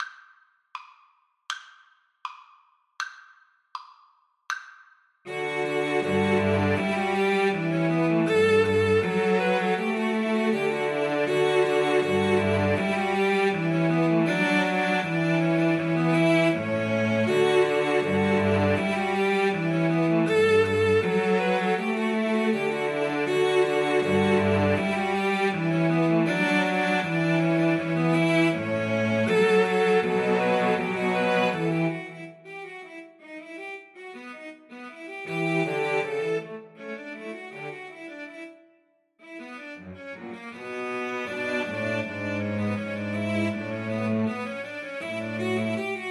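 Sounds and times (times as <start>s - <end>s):
solo cello gavotte: 5.3s - 33.1s, 35.2s - 36.8s, 39.2s - 46.0s.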